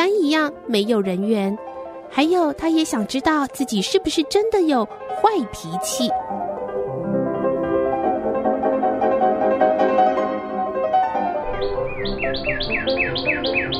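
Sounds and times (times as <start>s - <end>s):
soft sustained music: 0.0s - 13.7s
speech: 0.3s - 6.4s, 12.4s - 13.7s
robin chirping: 11.6s - 13.7s.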